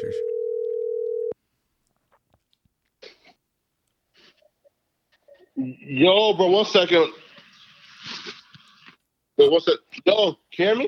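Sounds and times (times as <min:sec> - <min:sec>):
telephone dial tone while a call is placed: 0:00.1 - 0:01.4
speech: 0:05.6 - 0:07.2, 0:09.4 - 0:10.8.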